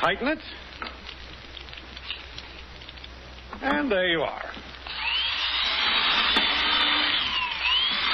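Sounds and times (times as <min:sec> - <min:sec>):
speech: 0:00.0 - 0:00.7, 0:03.6 - 0:04.7
power drill boring holes through a wooden board: 0:04.8 - 0:08.1.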